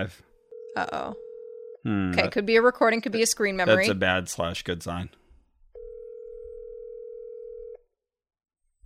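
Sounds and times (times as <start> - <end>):
speech: 0.0 - 1.2, 1.8 - 5.2
telephone dial tone during outgoing call: 0.5 - 1.8, 5.8 - 7.8.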